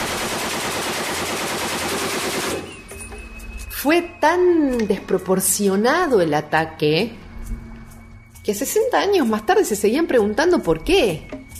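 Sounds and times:
Colt heavy machine gun firing: 0.0s - 2.8s
speech: 3.8s - 7.2s, 8.5s - 11.4s.

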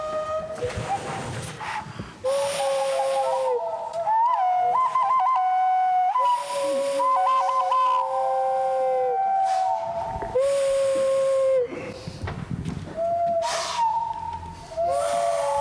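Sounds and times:
whistles blown: 0.0s - 12.2s, 12.9s - 15.6s.

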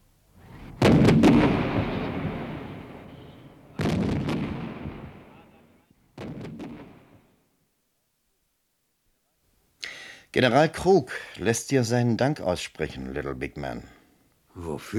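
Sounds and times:
artillery cannons firing a salvo in a cavalry battle: 0.4s - 7.3s
speech: 10.3s - 14.0s, 14.6s - 14.9s.

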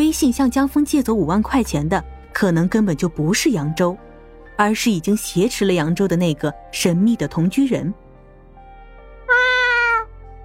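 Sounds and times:
speech: 0.1s - 8.0s
cat meowing: 9.3s - 10.1s.

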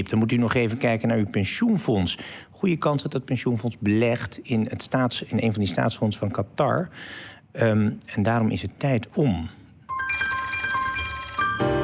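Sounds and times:
speech: 0.1s - 9.6s
electronic telephone ringing for an incoming phone call: 9.9s - 11.8s.

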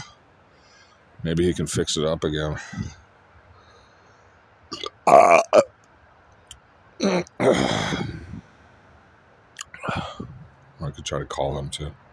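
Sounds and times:
speech: 1.2s - 3.0s, 5.1s - 5.4s, 11.1s - 12.0s
man hiccuping: 4.7s - 5.7s, 7.0s - 8.4s.

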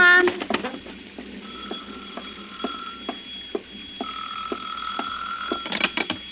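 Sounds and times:
telephone bell ringing: 1.4s - 6.2s.

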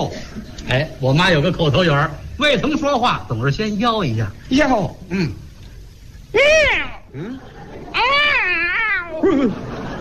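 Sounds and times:
speech: 0.0s - 5.4s, 6.3s - 7.8s, 9.3s - 9.7s
person imitating a cat yowling after its tail is stepped on: 6.3s - 7.4s, 8.0s - 9.5s
laughter: 7.1s - 9.9s.

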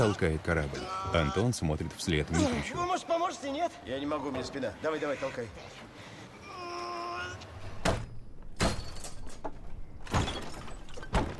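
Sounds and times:
speech: 0.0s - 6.1s
wooden shed door creaking open: 7.6s - 11.3s.

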